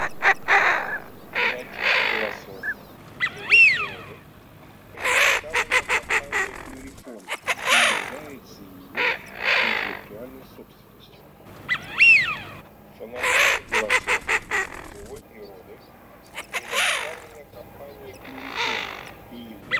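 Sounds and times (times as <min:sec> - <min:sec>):
common pochard duck call: 0:00.0 - 0:04.2, 0:05.0 - 0:08.3, 0:09.0 - 0:10.2, 0:13.2 - 0:15.2, 0:16.4 - 0:17.4, 0:18.2 - 0:19.7.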